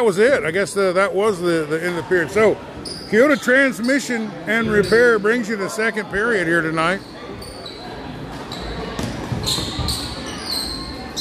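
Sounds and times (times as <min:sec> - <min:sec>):
speech: 0:00.0 - 0:07.2
steady crowd noise at a high school basketball game: 0:00.0 - 0:11.1
basketball dribbled during a high school game: 0:08.9 - 0:10.1.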